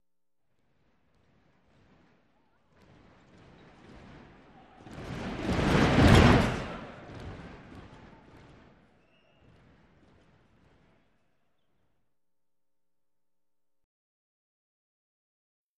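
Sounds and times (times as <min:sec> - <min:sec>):
sports arena crowd stomping feet: 0:00.6 - 0:11.2.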